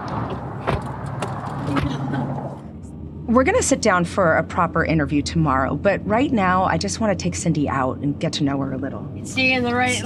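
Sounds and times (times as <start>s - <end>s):
car door and seat mechanism clunks and rattles: 0.0s - 2.3s
speech: 3.3s - 10.0s.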